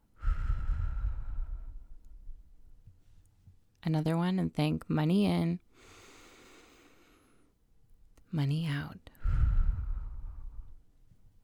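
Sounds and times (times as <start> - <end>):
person taking a deep breath during a relaxation exercise: 0.0 - 2.0, 5.8 - 7.5, 9.1 - 10.8
speech: 3.8 - 5.9, 8.3 - 9.1.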